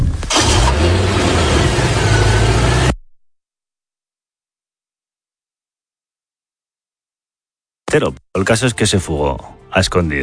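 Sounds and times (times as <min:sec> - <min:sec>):
car engine cranking and running: 0:00.2 - 0:03.0
speech: 0:07.9 - 0:10.2.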